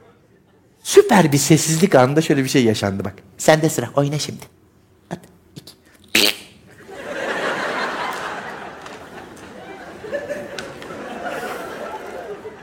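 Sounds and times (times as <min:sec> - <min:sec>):
speech: 0:01.0 - 0:05.3
sputtering buzzy fart noise made with the mouth: 0:05.1 - 0:06.7
laughter: 0:06.7 - 0:12.6.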